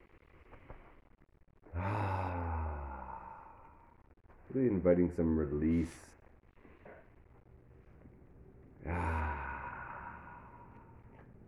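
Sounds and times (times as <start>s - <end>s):
breathy sounds: 0.1s - 4.5s, 5.8s - 11.4s
long sighing exhale during a guided meditation: 1.7s - 3.9s, 8.8s - 11.0s
speech: 4.5s - 6.1s.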